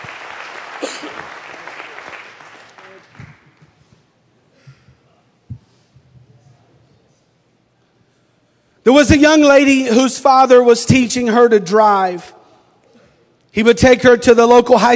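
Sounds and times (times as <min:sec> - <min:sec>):
congregation clapping hands: 0:00.0 - 0:03.8
speech: 0:08.9 - 0:12.4, 0:13.6 - 0:14.9.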